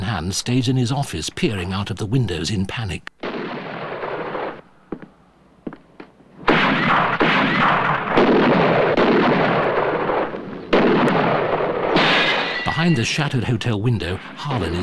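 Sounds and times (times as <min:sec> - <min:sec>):
speech: 0:00.2 - 0:03.1, 0:12.8 - 0:14.8
gunshots in a shootout at a hotel with rooftop snipers: 0:03.2 - 0:04.7, 0:06.4 - 0:14.8.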